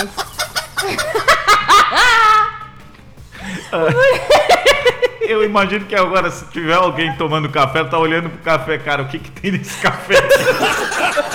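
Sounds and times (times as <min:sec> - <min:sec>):
speech: 0:00.0 - 0:00.2, 0:03.7 - 0:04.5, 0:05.3 - 0:11.3
hen clucking and calling to her chicks: 0:00.0 - 0:09.0
laughter: 0:00.0 - 0:11.3.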